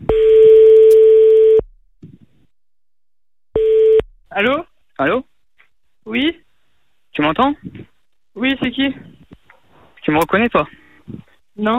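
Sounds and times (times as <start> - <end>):
telephone ringback tone during an outgoing call: 0.1 - 1.6, 3.6 - 4.0
speech: 4.4 - 5.3, 6.1 - 6.4, 7.2 - 9.1, 10.1 - 11.7.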